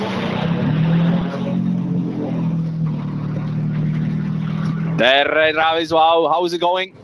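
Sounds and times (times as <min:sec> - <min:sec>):
Peugeot 208 Rally4 front-wheel-drive rally car engine running at end of tarmac stage: 0:00.0 - 0:07.0
speech: 0:05.0 - 0:07.0.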